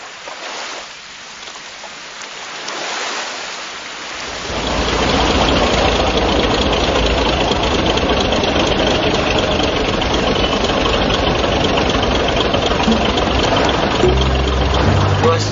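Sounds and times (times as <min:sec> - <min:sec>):
boat engine running during a night ride on the sea: 0:04.3 - 0:15.4.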